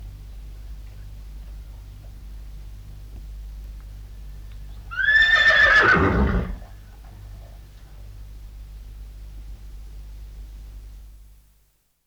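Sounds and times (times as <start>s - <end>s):
horse whinnying: 4.9s - 6.8s.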